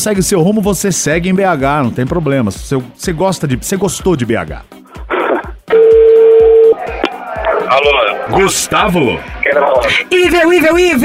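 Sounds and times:
speech: 0.0s - 4.8s, 7.7s - 11.0s
short sharp beep: 5.7s - 6.8s
telephone dialing a call: 5.7s - 6.8s.

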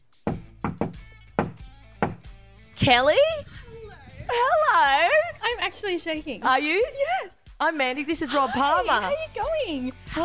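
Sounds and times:
knocking on a front door: 0.3s - 2.3s
speech: 2.8s - 3.5s, 4.3s - 10.2s.

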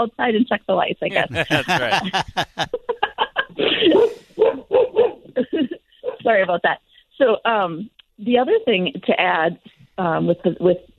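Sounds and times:
speech: 0.0s - 3.0s, 6.3s - 10.9s
laughter: 1.1s - 4.3s
hound dog barking: 4.0s - 5.3s.

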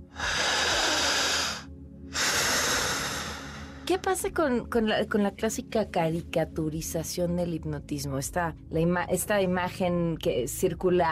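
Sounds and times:
special breathing pattern demonstrated for a hypnosis patient: 0.1s - 3.8s
speech: 3.9s - 11.1s.

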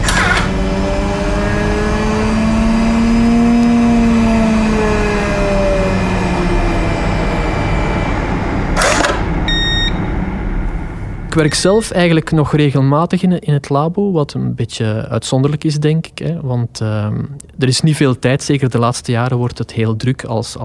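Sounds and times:
small basic laboratory centrifuge spinning: 0.0s - 12.2s
speech: 11.4s - 20.6s.

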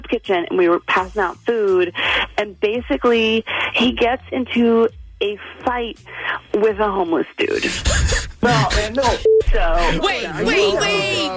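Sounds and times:
speech: 0.1s - 11.3s
short telephone beep of an incoming call: 9.2s - 9.8s.

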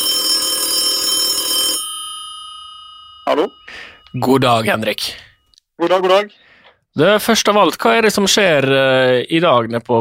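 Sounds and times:
outgoing call phone ringing tone, bright buzzing ring: 0.0s - 5.4s
speech: 3.3s - 10.0s.

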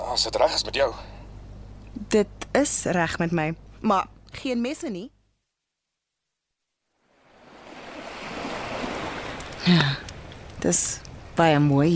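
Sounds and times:
speech: 0.2s - 1.1s, 2.0s - 5.2s, 10.6s - 11.9s
cold wind blowing on a beach: 7.2s - 11.9s.

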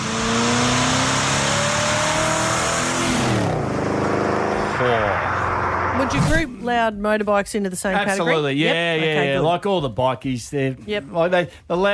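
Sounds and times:
loud car engine revving: 0.0s - 6.4s
speech: 6.1s - 11.9s.

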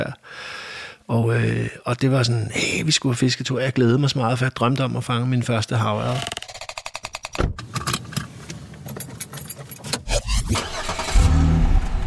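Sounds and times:
speech: 1.1s - 6.4s
keys jingling: 8.8s - 10.1s
small green Fiat Punto engine cranking, idling and revving as the car pulls away: 10.0s - 12.0s.

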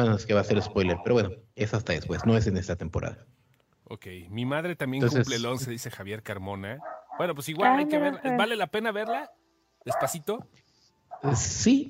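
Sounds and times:
speech: 0.0s - 10.6s, 11.2s - 11.8s
dog barking: 2.1s - 2.5s, 6.8s - 7.8s, 9.1s - 10.3s, 11.1s - 11.4s.

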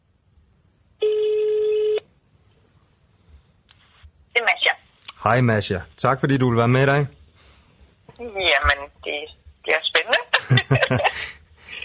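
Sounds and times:
faint low hum: 0.0s - 11.8s
telephone call ringback tone: 1.0s - 2.0s
speech: 5.2s - 7.2s
laughter: 10.1s - 11.8s.

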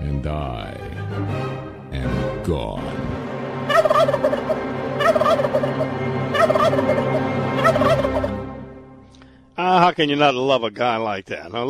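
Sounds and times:
speech: 0.2s - 1.5s, 2.5s - 3.2s, 10.0s - 11.6s
wild turkey gobbling: 3.7s - 8.4s.

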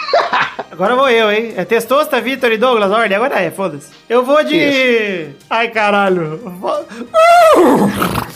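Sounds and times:
laughter: 0.0s - 0.8s
speech: 0.8s - 8.3s
person imitating a horse whinny in an animal imitation game: 7.2s - 8.3s.

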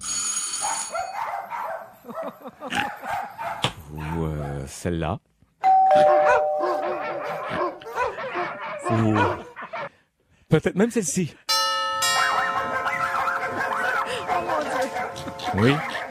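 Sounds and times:
several dogs barking, yipping and howling: 0.6s - 4.8s, 5.9s - 10.0s, 12.0s - 16.0s
speech: 4.7s - 5.3s, 8.9s - 9.5s, 10.5s - 11.5s, 15.5s - 16.0s
classic doorbell ringing with a buzzing metallic tone: 5.6s - 7.5s, 11.5s - 15.5s.

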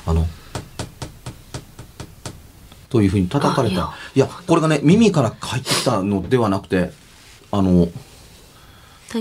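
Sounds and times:
speech: 0.1s - 0.4s, 2.9s - 8.1s
sharp raps on window glass: 0.5s - 2.4s.

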